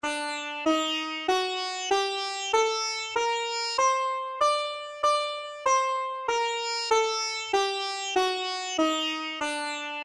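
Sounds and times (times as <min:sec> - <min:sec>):
virtual sitar playing a Phrygian dominant scale in D: 0:00.0 - 0:10.0.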